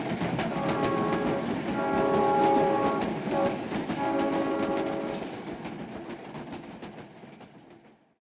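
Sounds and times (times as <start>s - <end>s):
train passing with clacking wheels: 0.0s - 8.2s
train horn blowing a sustained chord: 0.5s - 5.4s.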